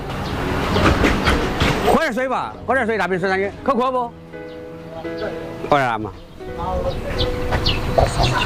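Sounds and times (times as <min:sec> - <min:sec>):
ducks quacking in a yard: 0:00.7 - 0:02.0, 0:06.7 - 0:08.4
speech: 0:02.1 - 0:04.2, 0:05.0 - 0:08.4.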